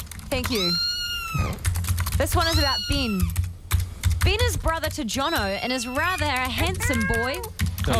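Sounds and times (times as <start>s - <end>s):
speech: 0.3s - 3.4s, 4.2s - 7.9s
cat meowing: 0.5s - 1.6s, 2.4s - 3.3s, 5.2s - 7.5s.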